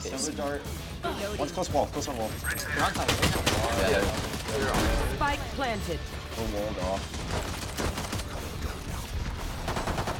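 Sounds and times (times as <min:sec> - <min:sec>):
speech: 0:00.0 - 0:07.9
rapid gunfire in a tactical shooter video game: 0:02.8 - 0:05.2, 0:06.8 - 0:10.1.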